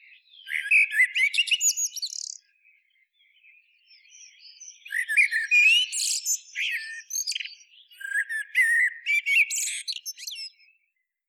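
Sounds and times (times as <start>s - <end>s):
common blackbird Turdus merula whistles and squeaky twitter: 0.3s - 2.5s, 4.0s - 10.7s.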